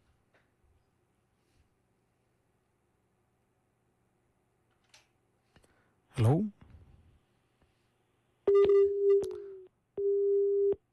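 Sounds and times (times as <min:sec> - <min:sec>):
speech: 0:06.2 - 0:06.6
busy tone beeps on a phone line after a call drops: 0:08.5 - 0:10.8.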